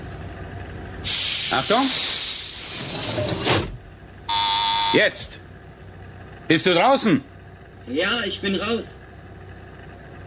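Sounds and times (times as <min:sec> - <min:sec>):
speech: 0:01.0 - 0:02.2, 0:04.9 - 0:05.4, 0:06.5 - 0:07.3, 0:07.9 - 0:09.0
spacecraft airlock hatch hissing open: 0:01.0 - 0:03.8
sharp electric buzz: 0:04.3 - 0:05.0.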